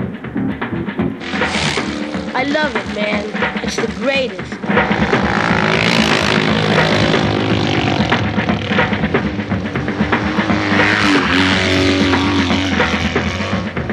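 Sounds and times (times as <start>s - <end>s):
motorcycle engine revving: 0.3s - 13.9s
speech: 2.4s - 5.2s.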